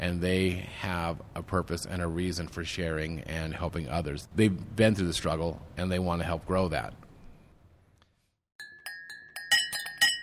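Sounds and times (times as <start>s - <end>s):
speech: 0.0s - 7.0s
glasses clinking together in a holiday party toast: 8.6s - 10.2s.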